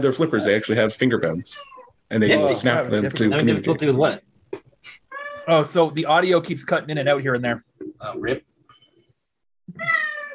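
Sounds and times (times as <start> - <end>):
speech: 0.0 - 4.3, 5.5 - 8.5
cat meowing: 1.5 - 2.0, 5.1 - 5.6, 9.7 - 10.3.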